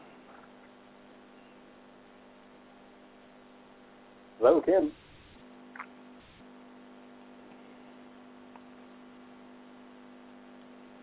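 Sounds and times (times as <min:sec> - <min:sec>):
phone line interference hum: 0:00.0 - 0:11.0
speech: 0:04.4 - 0:05.0.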